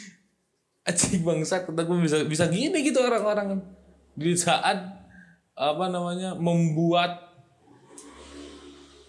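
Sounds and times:
speech: 0.9 - 5.0, 5.6 - 7.2
motorcycle engine droning as it rides past: 7.7 - 9.0.

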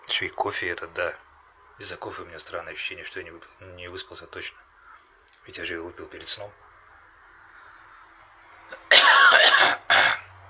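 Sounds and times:
speech: 0.1 - 4.6, 5.4 - 6.7
loud harsh rasping cough: 8.8 - 10.3.

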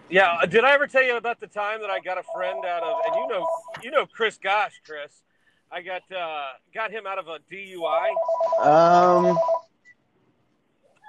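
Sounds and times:
speech: 0.1 - 9.6
electronic telephone ring: 2.3 - 3.8, 8.0 - 9.6.

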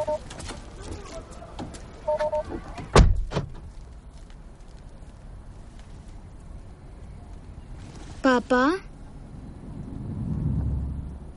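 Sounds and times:
two-tone electronic beeps: 0.0 - 0.2, 2.1 - 2.5
low rumble: 0.0 - 11.3
car door slamming as someone gets out of a car: 2.8 - 3.7
speech: 8.5 - 8.9.

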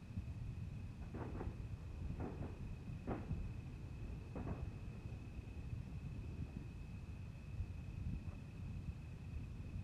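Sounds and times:
low rumble: 0.1 - 9.7
Fourth of July fireworks popping in Los Angeles: 0.9 - 6.7.

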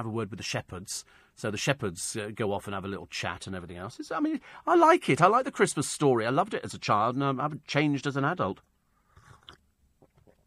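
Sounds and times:
speech: 0.0 - 8.7
person slurping hot tea from a cup: 9.0 - 10.4
sipping and swallowing tea: 9.0 - 10.4.

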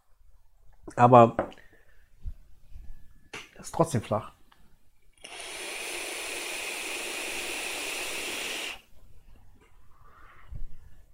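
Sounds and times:
speech: 0.9 - 1.4, 3.6 - 4.4
airflow hiss of vape kit being drawn on: 5.2 - 8.9.

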